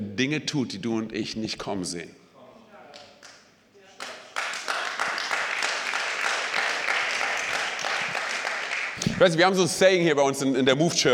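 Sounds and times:
speech: 0.2 - 2.2, 9.2 - 11.1
audience applause: 4.0 - 9.4.

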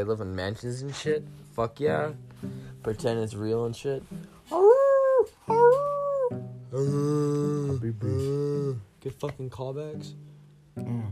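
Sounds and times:
speech: 0.0 - 4.6, 6.3 - 11.1
wolves howling: 4.5 - 6.4.

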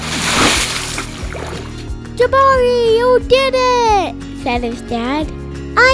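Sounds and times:
body plunging into water with heavy splash: 0.0 - 2.0
speech: 2.2 - 5.9.

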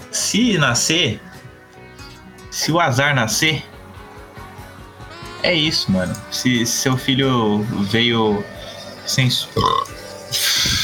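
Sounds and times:
speech: 0.3 - 1.3, 2.5 - 3.7, 5.4 - 10.0
brief hiss of breath: 7.8 - 9.2, 10.0 - 10.8
short burp: 8.6 - 10.8.

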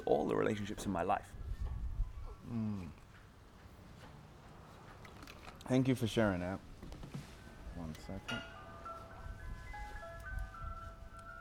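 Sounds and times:
speech: 0.0 - 1.4, 2.4 - 3.0, 5.7 - 6.7, 7.8 - 8.5
ice cream truck jingle: 7.4 - 11.3.

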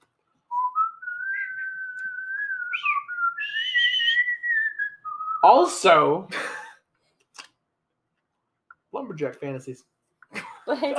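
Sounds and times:
penny whistle playing a slow solo melody: 0.5 - 5.6
speech: 5.5 - 6.4, 9.1 - 10.0, 10.7 - 10.9.

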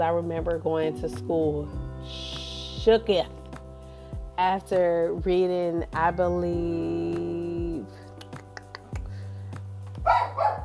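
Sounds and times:
speech: 0.0 - 3.4, 4.4 - 7.2
dog barking: 10.0 - 10.6.

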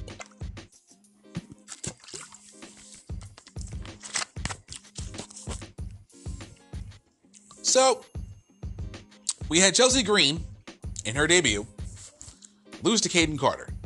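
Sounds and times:
water sloshing: 0.0 - 0.4, 1.4 - 5.7
person gulping and swallowing water: 0.0 - 0.6, 1.4 - 6.6
speech: 7.7 - 8.2, 9.5 - 10.5, 11.1 - 11.7, 12.8 - 13.7.

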